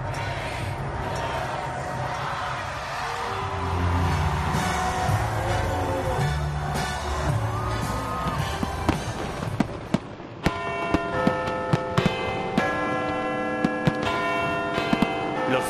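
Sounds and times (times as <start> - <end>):
dense festive street crowd din: 0.0 - 15.6
firework bangs and crackles: 3.0 - 15.6
bells ringing at midnight on New Year's Eve: 3.2 - 9.5, 10.4 - 15.6.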